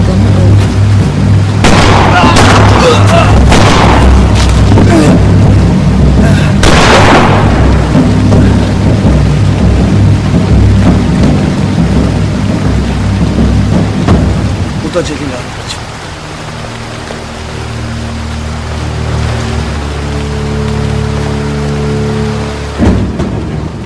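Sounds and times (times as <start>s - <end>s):
low rumble of thunder: 0.0s - 16.5s
steady heavy rain: 0.0s - 23.8s
pistol gunshots: 1.6s - 4.4s, 6.6s - 7.6s.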